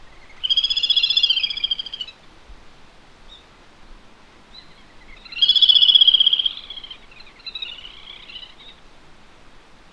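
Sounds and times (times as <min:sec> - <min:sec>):
grebes calling: 0:00.1 - 0:02.1, 0:05.2 - 0:08.7.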